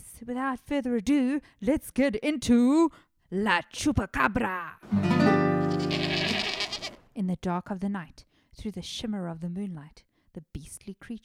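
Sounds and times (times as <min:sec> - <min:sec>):
speech: 0:00.3 - 0:06.0, 0:07.2 - 0:11.2
goat screaming: 0:05.6 - 0:07.0.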